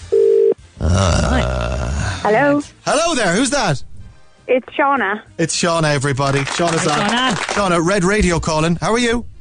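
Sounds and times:
ringback tone of an outgoing phone call: 0:00.1 - 0:00.6
speech: 0:01.0 - 0:01.6, 0:02.2 - 0:03.9, 0:04.5 - 0:09.3.

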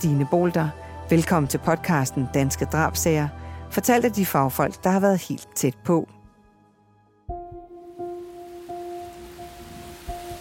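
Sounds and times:
speech: 0:00.0 - 0:06.2
heavy rain pouring: 0:08.2 - 0:10.4.

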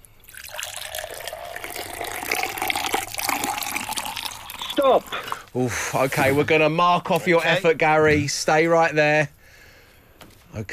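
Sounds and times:
water pouring steadily into a vessel during a game: 0:00.2 - 0:05.5
speech: 0:04.8 - 0:09.4, 0:10.6 - 0:10.7.

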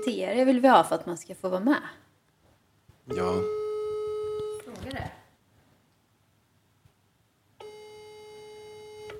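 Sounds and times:
speech: 0:00.0 - 0:02.0, 0:03.1 - 0:03.6
steady buzzy phone ringback tone: 0:03.1 - 0:04.6, 0:07.6 - 0:09.1.

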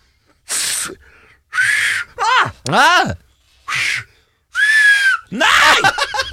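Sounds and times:
speech: 0:00.8 - 0:01.7, 0:02.7 - 0:03.2
finger-in-mouth whistling: 0:01.5 - 0:02.1, 0:03.7 - 0:05.3
laughter: 0:05.4 - 0:06.3.

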